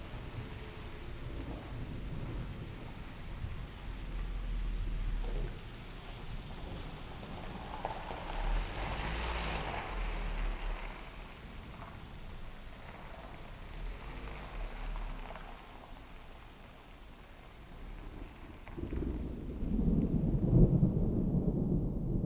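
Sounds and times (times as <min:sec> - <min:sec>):
low rolling thunder: 0:00.0 - 0:11.6, 0:18.0 - 0:22.2
rain falling during a thunderstorm by a lake: 0:00.0 - 0:22.2.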